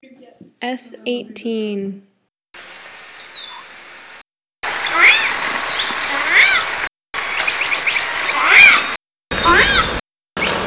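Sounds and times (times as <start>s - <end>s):
steady background hiss: 2.6s - 9.4s
orca whistling calls: 3.2s - 3.8s, 4.6s - 10.6s.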